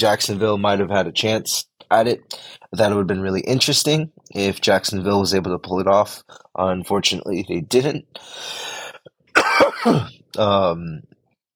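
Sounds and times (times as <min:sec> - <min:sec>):
speech: 0:00.0 - 0:09.0, 0:09.8 - 0:11.1
harsh coughs: 0:09.3 - 0:10.2.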